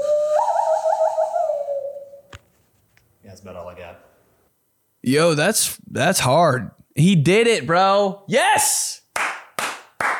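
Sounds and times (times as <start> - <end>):
hand whistle blown through cupped hands: 0.0 - 2.4
speech: 5.0 - 9.0.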